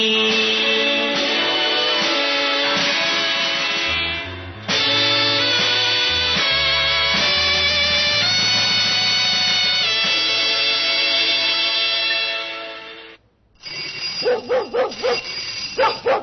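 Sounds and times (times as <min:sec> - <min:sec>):
sustained musical passage: 0:00.0 - 0:13.2
dog barking excitedly greeting a familiar visitor at the door: 0:14.2 - 0:16.2.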